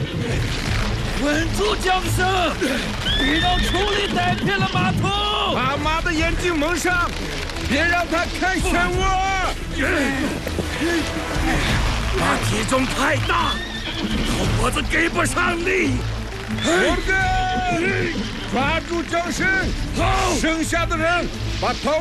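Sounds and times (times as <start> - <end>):
horses neighing while led through a river with a whirlpool: 0.0 - 1.6, 9.7 - 20.4
horse hooves clattering: 0.0 - 21.2
speech: 1.2 - 22.0.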